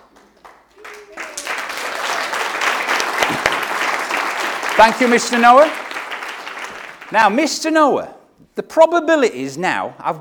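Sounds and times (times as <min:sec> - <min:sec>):
audience round of applause: 0:00.0 - 0:07.4
speech: 0:04.8 - 0:05.8, 0:07.1 - 0:10.1.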